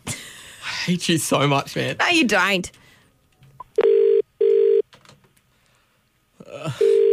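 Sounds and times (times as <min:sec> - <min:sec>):
speech: 0:00.9 - 0:02.8
electronic telephone tones of a phone call being placed: 0:03.8 - 0:04.8, 0:06.8 - 0:07.1.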